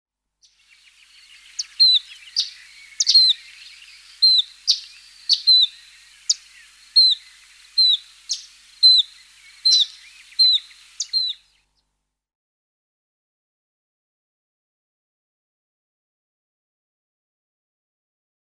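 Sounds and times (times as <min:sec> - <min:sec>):
Semicollared flycatcher: 0:00.4 - 0:11.6.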